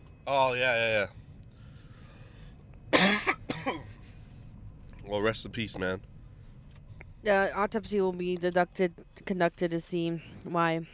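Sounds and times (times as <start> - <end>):
speech: 0.3 - 1.2, 3.0 - 4.0, 5.1 - 6.1, 7.2 - 10.9
person coughing harshly: 2.9 - 4.0.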